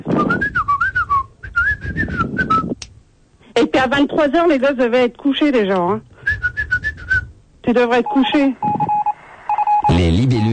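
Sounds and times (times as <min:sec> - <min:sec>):
person whistling a wavering tuneful melody: 0:00.2 - 0:02.8, 0:06.2 - 0:07.3
speech: 0:03.8 - 0:06.1, 0:07.7 - 0:08.8, 0:09.9 - 0:10.5.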